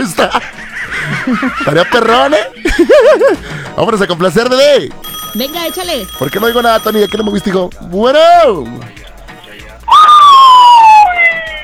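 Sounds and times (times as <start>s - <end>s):
laughter: 0.0s - 3.6s
speech: 0.2s - 0.5s, 1.3s - 9.0s
police siren wailing: 9.9s - 11.6s.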